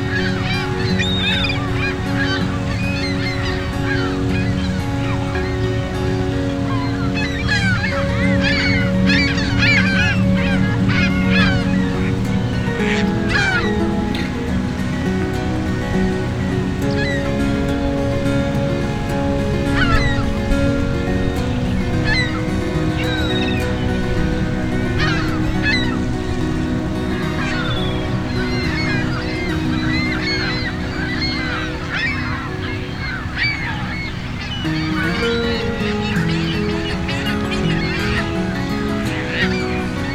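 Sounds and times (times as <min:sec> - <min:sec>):
faint voices in a park: 0:00.0 - 0:40.1
flock of geese honking in a park: 0:00.0 - 0:40.1.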